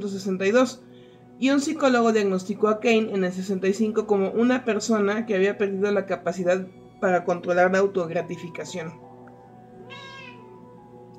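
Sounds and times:
speech: 0.0s - 9.0s
domestic cat meowing: 9.8s - 10.6s.

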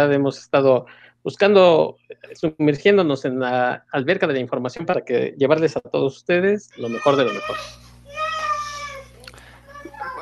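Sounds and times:
speech: 0.0s - 7.8s
little girl fussing at bedtime with a whiny wail: 6.8s - 10.2s.

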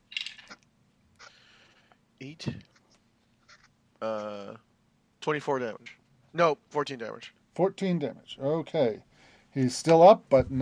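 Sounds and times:
damage dice rattling across a hard tabletop in a role-playing game: 0.1s - 0.6s
speech: 2.2s - 2.7s, 4.0s - 10.6s.

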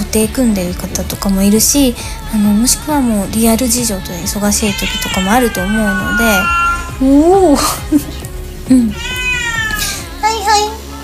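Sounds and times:
speech: 0.1s - 9.1s
cat meowing: 4.5s - 7.4s, 8.8s - 10.0s.

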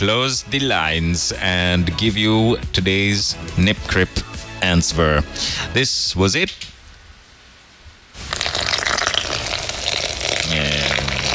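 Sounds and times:
speech: 0.0s - 6.7s
water poured onto flour: 8.2s - 11.3s.

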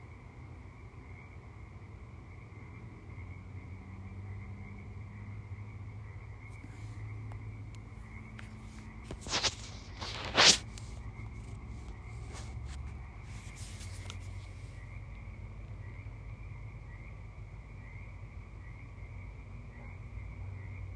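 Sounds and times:
outdoor chorus of frogs croaking: 0.0s - 20.9s
brief sharper noises: 9.1s - 10.9s.

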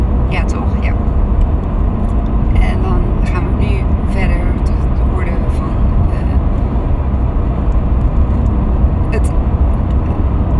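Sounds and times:
road and engine noise in a car cabin while driving: 0.0s - 10.5s.

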